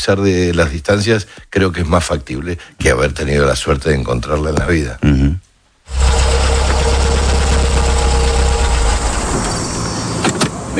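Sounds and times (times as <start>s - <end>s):
speech: 0.0s - 6.0s
car engine idling: 5.9s - 10.2s.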